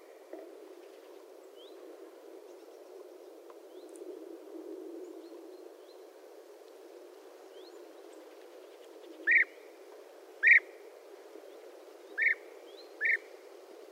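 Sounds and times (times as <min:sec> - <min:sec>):
European bee-eater singing: 0:09.2 - 0:09.6, 0:10.4 - 0:10.7, 0:12.1 - 0:13.3.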